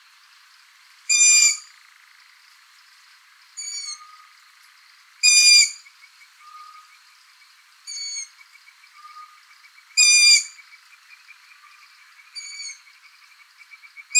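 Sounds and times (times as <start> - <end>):
long-eared owl Asio otus giving sharp squeaky harmonic-rich calls: 1.1 - 1.7, 3.6 - 4.3, 5.2 - 7.0, 7.9 - 10.6, 11.6 - 12.9, 13.6 - 14.1.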